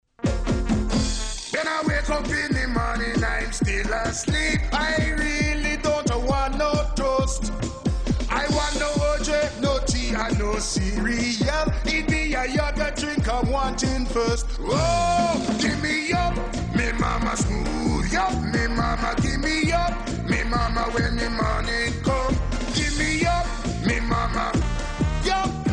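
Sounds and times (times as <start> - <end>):
commercial song: 0.2 - 25.7.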